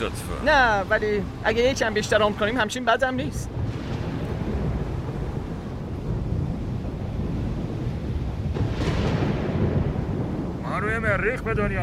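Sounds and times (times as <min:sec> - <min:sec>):
speech: 0:00.0 - 0:03.8, 0:10.9 - 0:11.8
gusting wind in a heavy storm: 0:00.0 - 0:11.8
deep rumbling thunder in a heavy storm: 0:03.4 - 0:11.8.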